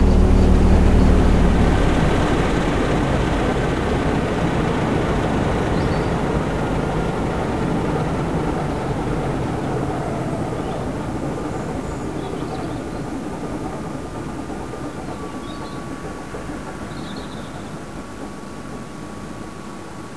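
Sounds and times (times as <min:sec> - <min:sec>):
Class 47 train engine shutting down: 0:00.0 - 0:20.1.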